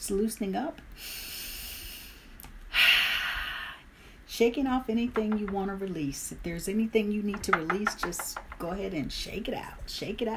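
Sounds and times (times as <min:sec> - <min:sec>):
speech: 0:00.0 - 0:01.2, 0:04.4 - 0:10.3
slow audible breath close to the ear: 0:01.0 - 0:04.2.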